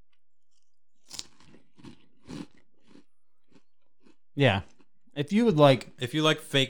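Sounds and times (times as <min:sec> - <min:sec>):
crunchy pizza-flavoured snack being chewed: 0:00.1 - 0:04.9
speech: 0:04.4 - 0:06.6.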